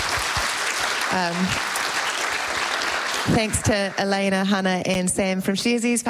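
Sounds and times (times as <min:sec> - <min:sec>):
audience applause for panelists after a panel discussion: 0:00.0 - 0:04.8
speech: 0:01.2 - 0:01.7, 0:03.2 - 0:06.0.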